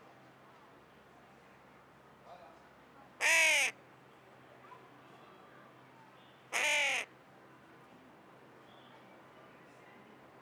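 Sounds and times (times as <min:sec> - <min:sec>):
Carrion crow Corvus corone cawing: 0:03.2 - 0:03.7, 0:06.6 - 0:07.0.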